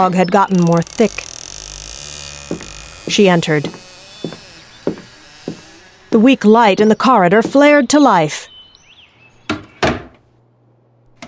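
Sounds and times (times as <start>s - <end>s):
speech: 0.0s - 1.4s, 2.5s - 3.8s, 6.1s - 8.5s
door opening: 0.3s - 8.0s.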